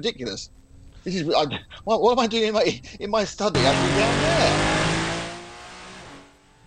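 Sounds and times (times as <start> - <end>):
speech: 0.0 - 4.7
onboard engine of number 408 Porsche Cayman Clubsport race car roaring: 3.5 - 6.6.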